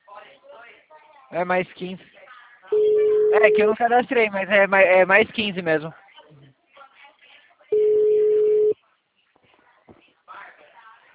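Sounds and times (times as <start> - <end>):
speech: 1.3 - 6.0
telephone busy signal on an outgoing call: 2.8 - 3.7, 7.8 - 8.8.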